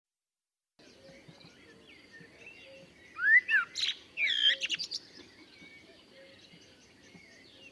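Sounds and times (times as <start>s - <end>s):
Turdus merula common blackbird singing: 0.8s - 7.7s.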